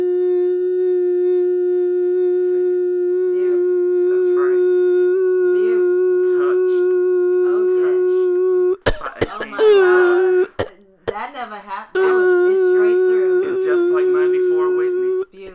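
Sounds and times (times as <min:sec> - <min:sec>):
long steady held sung note: 0:00.0 - 0:10.7, 0:12.0 - 0:15.5
singer coughing: 0:05.8 - 0:11.3, 0:12.0 - 0:15.5.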